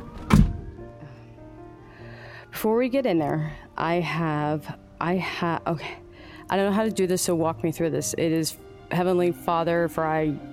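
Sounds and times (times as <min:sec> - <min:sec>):
heavy car door slamming shut: 0:00.1 - 0:00.7
speech: 0:02.6 - 0:10.5.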